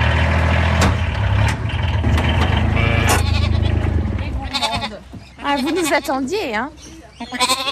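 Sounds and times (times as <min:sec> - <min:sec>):
idling small truck engine: 0:00.0 - 0:05.1
female Jacob sheep lamb bleating in quavering calls: 0:02.7 - 0:03.8, 0:04.4 - 0:06.2, 0:07.2 - 0:07.6
speech: 0:05.6 - 0:07.6.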